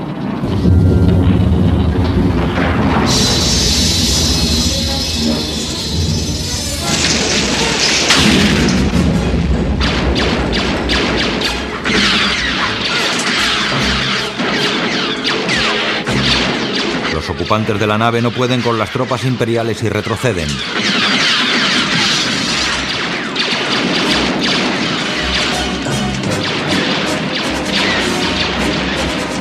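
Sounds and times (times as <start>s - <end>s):
sustained roaring noise: 0.0s - 14.4s
door exploding open with a loud booming crash: 0.3s - 18.8s, 20.9s - 27.1s
sharp impacts: 0.4s - 29.3s
speech: 17.5s - 21.0s.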